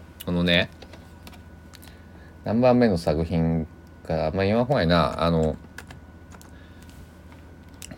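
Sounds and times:
low steady hum: 0:00.0 - 0:07.9
speech: 0:00.4 - 0:00.8, 0:02.4 - 0:05.6
fingers typing on a computer keyboard: 0:04.7 - 0:06.5.

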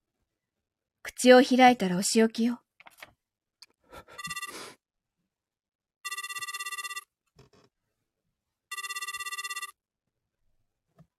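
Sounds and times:
speech: 0:01.2 - 0:02.6
phone ringback tone on a borrowed phone: 0:04.2 - 0:04.6, 0:06.0 - 0:07.1, 0:08.7 - 0:09.8.

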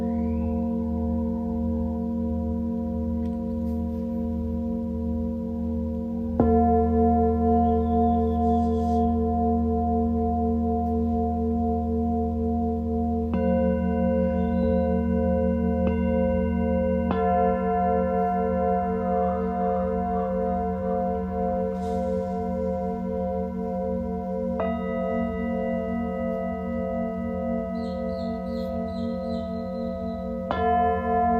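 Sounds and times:
deep steady drone: 0:00.0 - 0:31.3
singing bowls ringing in a sound-healing session: 0:00.0 - 0:31.3
faint higher chimes: 0:06.4 - 0:11.4, 0:13.4 - 0:31.3.

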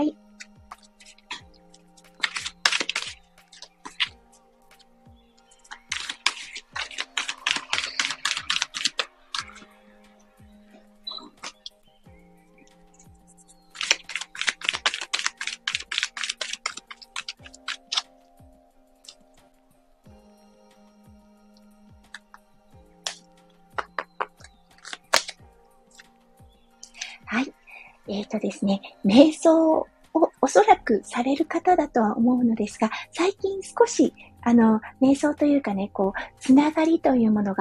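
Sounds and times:
faint ticking beat: 0:00.0 - 0:37.6
oracle cards being shuffled and drawn: 0:02.0 - 0:04.2, 0:05.7 - 0:09.7, 0:13.8 - 0:18.1, 0:23.8 - 0:25.4
speech: 0:28.6 - 0:29.9, 0:30.5 - 0:37.6.

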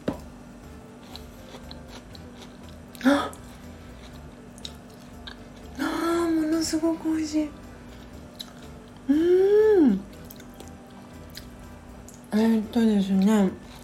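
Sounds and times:
low steady hum: 0:00.0 - 0:13.8
person chewing super-sweet corn kernels loosened from the cob: 0:00.8 - 0:05.8, 0:07.8 - 0:09.4, 0:10.0 - 0:12.3, 0:13.6 - 0:13.8
speech: 0:03.0 - 0:03.4, 0:06.7 - 0:07.6, 0:12.4 - 0:13.6.

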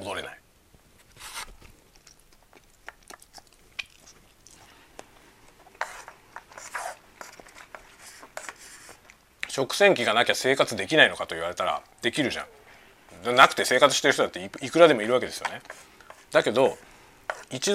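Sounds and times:
crunchy chewing of someone eating lunch: 0:01.2 - 0:09.2
speech: 0:09.6 - 0:12.6, 0:13.2 - 0:16.9, 0:17.5 - 0:17.7.

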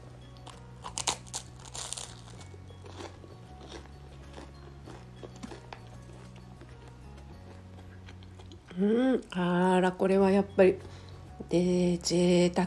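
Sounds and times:
crisp crunching bites into burnt toast: 0:00.4 - 0:08.8
soft chewing of burnt toast: 0:00.4 - 0:09.3
speech: 0:08.8 - 0:12.6.

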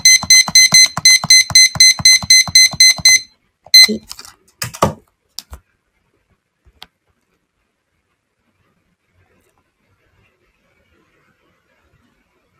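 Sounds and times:
digital timer beeping while being set: 0:00.0 - 0:04.0.

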